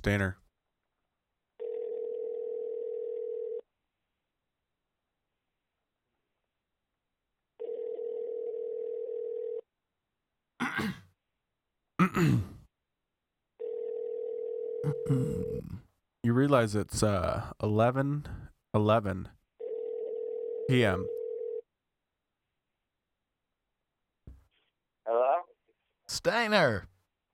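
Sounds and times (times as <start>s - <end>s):
speech: 0.0s - 0.4s, 12.1s - 12.5s, 15.0s - 15.5s, 16.4s - 19.4s, 20.7s - 21.2s, 26.1s - 26.9s
mid-pitched ringback tones on a phone line: 1.6s - 3.6s, 7.6s - 9.6s, 13.6s - 15.1s, 19.6s - 21.6s.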